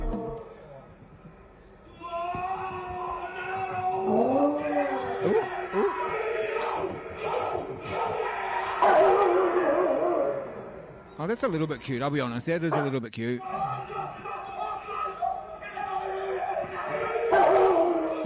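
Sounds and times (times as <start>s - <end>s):
crowd noise: 0.1s - 18.2s
shouting voices: 1.8s - 11.1s, 12.7s - 18.2s
five-year-old dog howling: 2.1s - 11.0s, 12.7s - 18.2s
rugby team group chant: 3.4s - 10.8s, 12.8s - 18.2s
speech: 11.3s - 14.2s.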